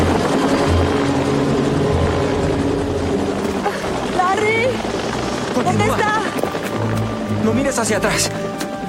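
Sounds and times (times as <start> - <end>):
agricultural helicopter rotor and engine droning: 0.0 - 8.8
speech: 7.7 - 8.5.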